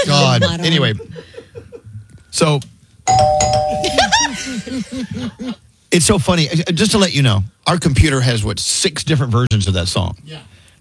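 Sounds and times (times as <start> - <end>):
laughter: 0.0 - 1.9, 3.8 - 5.6
speech: 0.4 - 1.3, 2.4 - 10.7
doorbell sound effect chime: 3.1 - 4.3.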